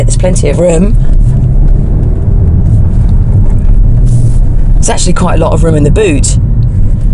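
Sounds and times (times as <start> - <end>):
speech: 0.0 - 1.1, 4.8 - 6.5
performance car engine drone while driving: 0.0 - 7.1.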